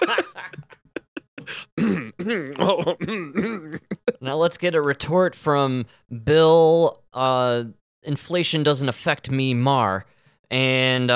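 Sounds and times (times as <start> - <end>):
laughter: 0.0 - 1.6
throat clearing: 1.0 - 4.2
speech: 1.5 - 11.1.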